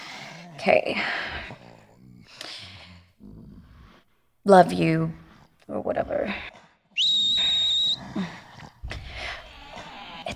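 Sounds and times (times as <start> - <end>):
speech: 0.6 - 1.6, 4.4 - 6.5
whistle blast: 7.0 - 8.0.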